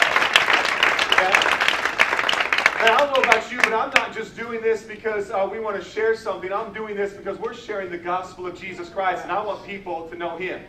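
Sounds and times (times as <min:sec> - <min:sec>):
crowd applauding: 0:00.0 - 0:04.1
speech: 0:02.8 - 0:10.6.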